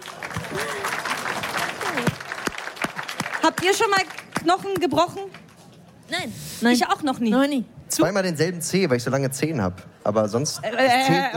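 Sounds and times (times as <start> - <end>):
people cheering: 0.0 - 3.9
applause from a small group: 0.0 - 5.6
speech: 3.5 - 5.4, 6.1 - 11.3.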